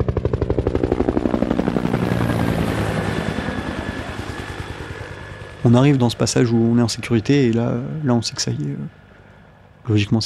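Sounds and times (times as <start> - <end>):
police helicopter rotor blades thudding in a fast steady chop: 0.0 - 8.0
roaring helicopter engine whine: 0.0 - 10.1
speech: 5.6 - 9.0, 9.9 - 10.2.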